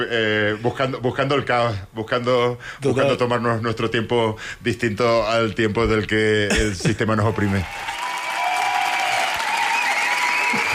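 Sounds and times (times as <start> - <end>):
speech: 0.0 - 8.0
crowd applauding with dense loud clapping: 7.4 - 10.7
faint whistles or cheers: 7.5 - 10.7.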